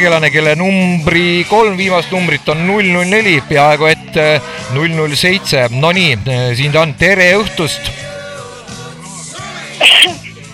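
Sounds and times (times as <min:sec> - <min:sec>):
speech: 0:00.0 - 0:08.1
raspy phlegmy cough from the throat: 0:09.8 - 0:10.2.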